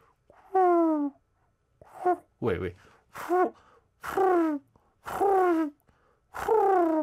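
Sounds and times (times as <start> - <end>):
person imitating pigeon cooing: 0.5 - 1.2, 3.2 - 5.8, 6.4 - 7.0.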